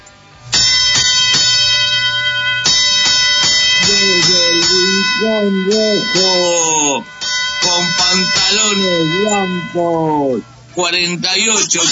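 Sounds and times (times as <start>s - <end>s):
bright metallic boxing bell ringing: 0.5s - 11.9s
speech: 3.9s - 11.9s.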